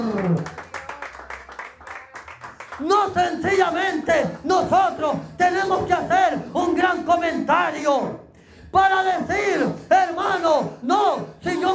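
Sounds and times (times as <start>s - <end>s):
crowd clapping rhythmically: 0.0s - 4.3s
speech: 0.3s - 0.6s, 2.8s - 11.7s.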